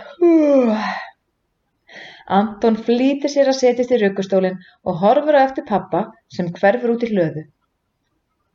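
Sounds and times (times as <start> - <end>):
loud drawn-out yawn: 0.0 - 1.1
speech: 2.3 - 7.6.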